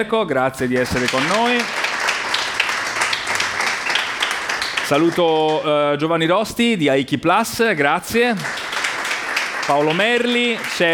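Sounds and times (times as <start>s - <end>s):
speech: 0.0s - 1.8s, 4.9s - 8.6s, 9.7s - 10.9s
audience applause welcoming a guest at a business event: 0.7s - 5.9s, 8.4s - 10.9s.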